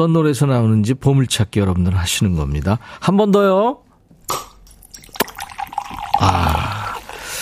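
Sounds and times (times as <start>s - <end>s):
speech: 0.0s - 4.5s
bottle cap popping off: 4.3s - 6.0s
fizzy soda pouring out of a bottle: 4.8s - 7.3s.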